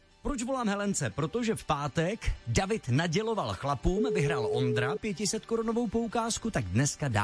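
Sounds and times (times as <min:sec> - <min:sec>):
speech: 0:00.3 - 0:07.2
telephone keypad dialing tones as a call is placed: 0:04.0 - 0:05.0.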